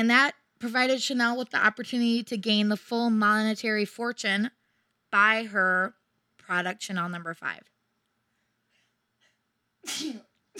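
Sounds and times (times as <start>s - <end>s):
speech: 0.0s - 7.7s, 9.8s - 10.5s
person sneezing: 9.2s - 10.5s.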